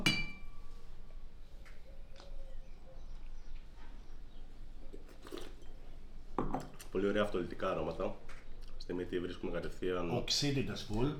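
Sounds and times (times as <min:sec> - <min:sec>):
champagne glasses clinking in a toast: 0:00.0 - 0:00.6
low steady hum: 0:00.0 - 0:11.1
speech: 0:07.0 - 0:11.1.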